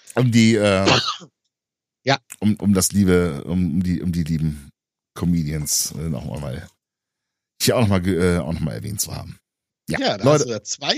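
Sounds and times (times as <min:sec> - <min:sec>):
speech: 0:00.2 - 0:01.4, 0:02.0 - 0:06.8, 0:07.6 - 0:10.9
drawn-out voiced throat clearing: 0:00.6 - 0:01.3
short quick coughing bursts: 0:00.7 - 0:01.3.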